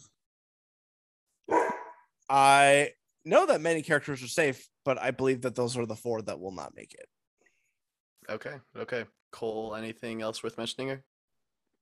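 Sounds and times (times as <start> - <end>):
dog barking: 1.5 - 2.0
speech: 2.3 - 7.2, 8.2 - 11.1.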